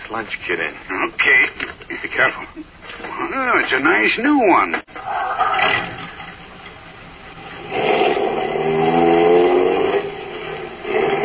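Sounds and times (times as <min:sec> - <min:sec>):
speech: 0:00.1 - 0:05.9
car engine revving on a drive to a plant: 0:07.4 - 0:11.2.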